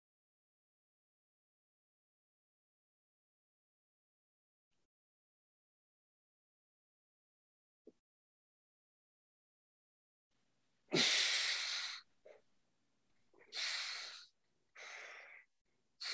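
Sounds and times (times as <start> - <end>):
breathing through the nose: 10.9 - 12.4, 13.4 - 16.1.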